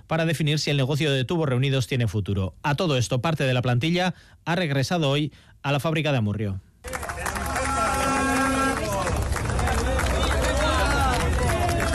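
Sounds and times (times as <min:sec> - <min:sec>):
speech: 0:00.1 - 0:07.0
scattered ironic clapping: 0:06.8 - 0:11.9
pickets jeering and shouting outside a factory: 0:07.0 - 0:11.9.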